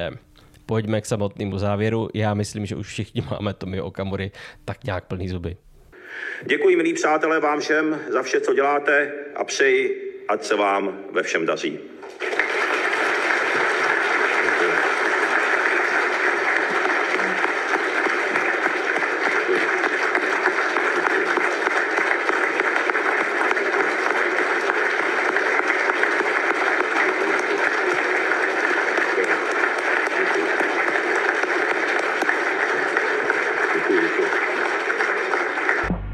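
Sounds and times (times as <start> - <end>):
speech: 0.0 - 12.3
crowd at a political party congress applauding: 12.0 - 36.0.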